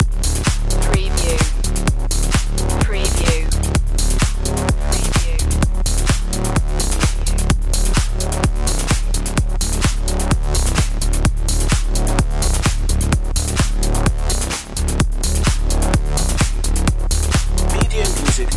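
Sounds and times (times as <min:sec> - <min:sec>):
club music loop: 0:00.0 - 0:18.5.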